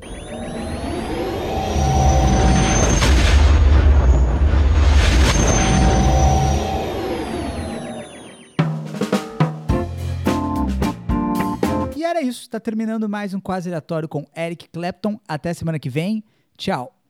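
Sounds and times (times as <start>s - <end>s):
sci-fi spaceship jump-to-hyperspace roar: 0.0s - 8.4s
music with distinct notes: 8.6s - 12.0s
speech: 12.2s - 17.0s.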